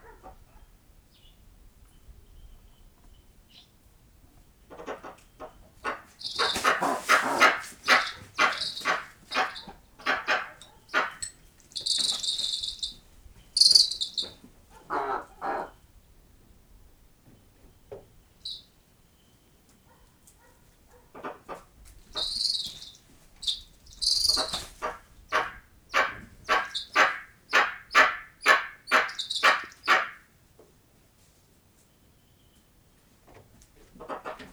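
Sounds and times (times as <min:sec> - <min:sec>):
eastern imperial eagles squabbling in nature on a farmstead: 0:04.7 - 0:15.8, 0:22.1 - 0:30.2.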